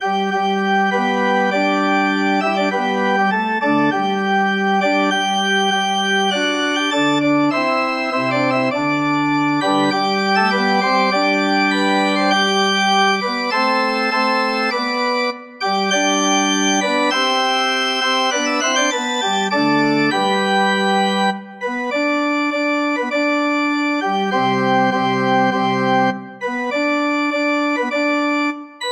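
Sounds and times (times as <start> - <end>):
organ playing a hymn: 0.0 - 28.8.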